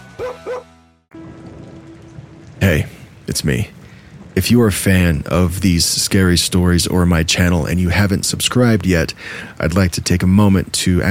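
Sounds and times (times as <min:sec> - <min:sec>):
dog barking: 0:00.2 - 0:00.7
speech: 0:00.2 - 0:01.4, 0:02.6 - 0:03.8, 0:04.4 - 0:11.1
steady falling rain: 0:01.1 - 0:11.1.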